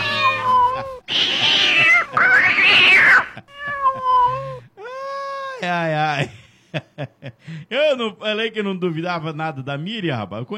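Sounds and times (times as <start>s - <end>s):
cat meowing: 0.0s - 4.6s
speech: 6.2s - 10.5s.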